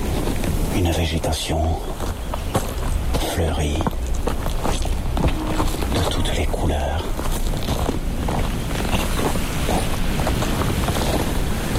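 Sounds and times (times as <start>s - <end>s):
low wash of seaside waves: 0.0s - 3.2s, 4.0s - 11.7s
seaside wind buffeting the microphone: 0.0s - 11.7s
speech: 0.8s - 2.2s, 3.4s - 4.0s, 6.1s - 7.3s.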